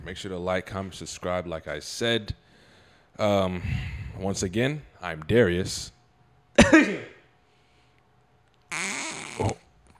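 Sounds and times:
speech: 0:00.0 - 0:02.4, 0:03.2 - 0:06.0, 0:06.6 - 0:07.1, 0:09.4 - 0:09.6
person coughing: 0:06.6 - 0:07.2.

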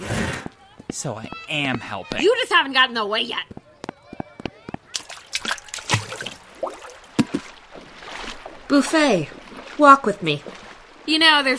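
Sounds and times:
speech: 0:01.0 - 0:03.5, 0:08.7 - 0:11.5
lazy river water sloshing and splashing: 0:04.9 - 0:11.5.

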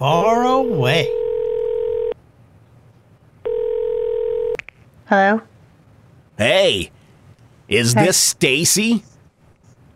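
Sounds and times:
speech: 0:00.0 - 0:01.2, 0:05.1 - 0:05.5, 0:06.4 - 0:07.0, 0:07.7 - 0:09.1
telephone ringback tone heard through the handset: 0:00.7 - 0:02.2, 0:03.5 - 0:04.6.

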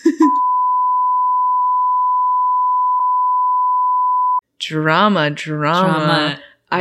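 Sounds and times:
high-pitched censor bleep tone: 0:00.3 - 0:04.4
speech: 0:04.7 - 0:06.7.

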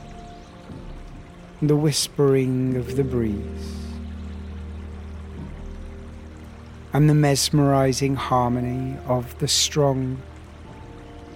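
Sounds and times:
river water flowing: 0:00.0 - 0:11.3
speech: 0:01.6 - 0:03.9, 0:07.0 - 0:10.3.

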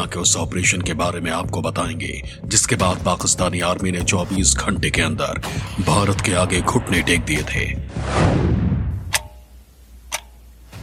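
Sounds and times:
speech: 0:00.0 - 0:08.5
whoosh: 0:06.2 - 0:09.2
clock ticking: 0:09.1 - 0:09.5, 0:10.1 - 0:10.5.

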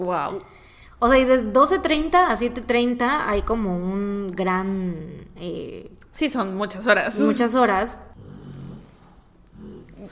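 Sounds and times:
speech: 0:00.0 - 0:08.3
dog grumbling while trying to nap: 0:08.1 - 0:10.0.

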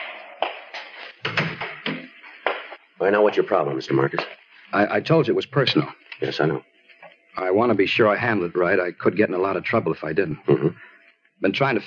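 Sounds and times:
door pushed shut with latch catching: 0:00.8 - 0:02.2
speech: 0:03.0 - 0:06.7, 0:07.4 - 0:11.8.

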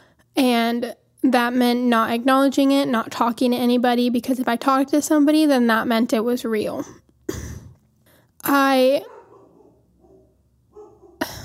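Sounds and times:
speech: 0:00.7 - 0:07.0, 0:08.4 - 0:09.2
dog in an apartment yelping bark: 0:09.0 - 0:11.3.

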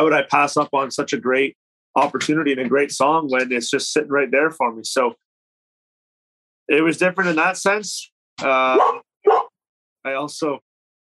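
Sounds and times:
speech: 0:00.0 - 0:05.2, 0:06.7 - 0:09.0, 0:10.0 - 0:10.7
young Labrador barking: 0:08.7 - 0:09.5.

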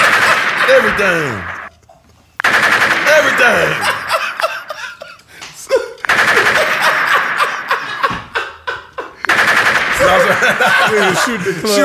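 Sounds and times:
automatic gunfire in a video game: 0:00.0 - 0:01.5, 0:02.4 - 0:04.3, 0:06.1 - 0:08.0, 0:09.3 - 0:10.9
laughter: 0:00.0 - 0:01.5, 0:02.9 - 0:11.8
speech: 0:00.7 - 0:01.6, 0:03.2 - 0:04.0, 0:10.1 - 0:11.8.

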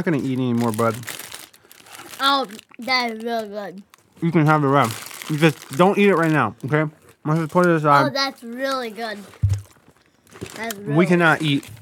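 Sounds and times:
speech: 0:00.0 - 0:01.2, 0:02.2 - 0:09.4, 0:10.6 - 0:11.8
paper rustling and crinkling as it is moved away from food crumbs: 0:00.0 - 0:04.2, 0:04.8 - 0:11.8
young child making a drawn-out vocal sound: 0:02.2 - 0:03.8, 0:08.0 - 0:09.3, 0:10.5 - 0:11.2.

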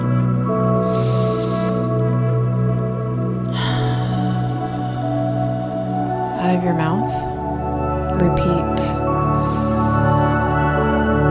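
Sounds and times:
steady music: 0:00.0 - 0:11.2
deep breath in through the nose: 0:00.8 - 0:02.0, 0:03.5 - 0:05.4
speech: 0:06.6 - 0:07.3.

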